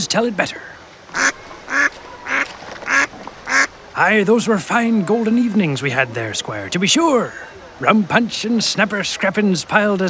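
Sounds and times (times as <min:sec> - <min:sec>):
speech: 0:00.0 - 0:01.3, 0:04.0 - 0:10.0
duck quacking: 0:01.1 - 0:03.7.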